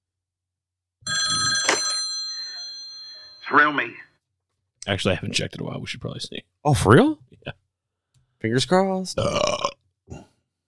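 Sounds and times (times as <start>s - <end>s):
old-style telephone bell ringing: 1.0s - 4.1s
speech: 3.5s - 4.1s, 4.8s - 7.6s, 8.4s - 10.2s.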